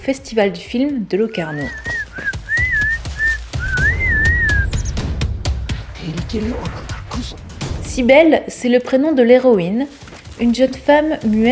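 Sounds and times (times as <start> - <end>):
speech: 0.0 - 2.3, 6.3 - 11.4
rustling: 1.4 - 4.8, 9.5 - 11.4
person whistling in whistled language: 1.5 - 5.0.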